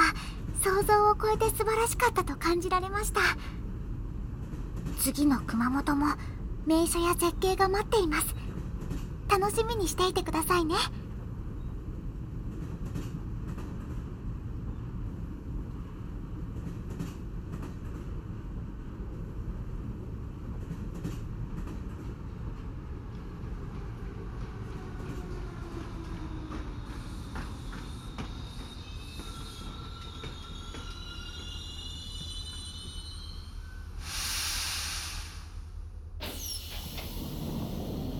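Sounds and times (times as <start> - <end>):
train rumbling along the rails: 0.0 - 38.1
speech: 0.6 - 3.6, 5.0 - 8.4, 9.3 - 11.0
high metallic squeal of a train stopping at a station: 27.9 - 35.2.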